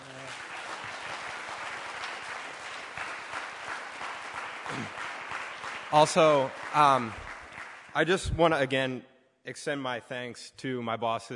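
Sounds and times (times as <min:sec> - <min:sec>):
applause from a large audience: 0:00.0 - 0:08.3
speech: 0:05.9 - 0:07.2, 0:08.0 - 0:11.3.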